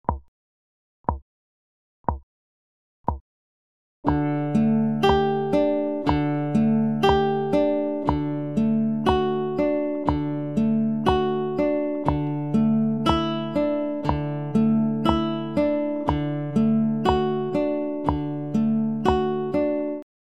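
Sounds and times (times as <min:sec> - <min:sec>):
acoustic pop guitar picking: 0:04.0 - 0:20.0.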